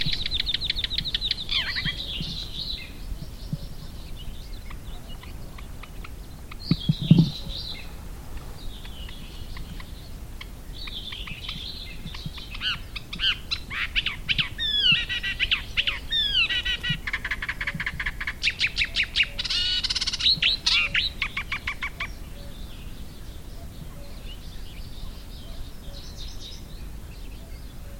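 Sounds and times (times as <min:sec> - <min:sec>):
Thick-billed Warbler singing: 0:00.0 - 0:27.9.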